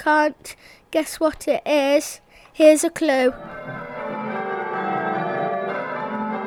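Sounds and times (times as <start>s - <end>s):
speech: 0.0s - 3.8s
church bells pealing: 3.0s - 6.4s.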